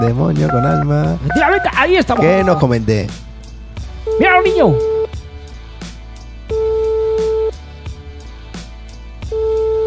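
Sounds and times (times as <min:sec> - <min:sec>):
telephone line tone while a call is dialed: 0:00.0 - 0:02.6, 0:04.1 - 0:05.1, 0:06.5 - 0:07.5, 0:09.3 - 0:09.8
speech: 0:00.0 - 0:03.3, 0:04.2 - 0:04.9
rhythmic music with a regular beat: 0:00.0 - 0:09.8.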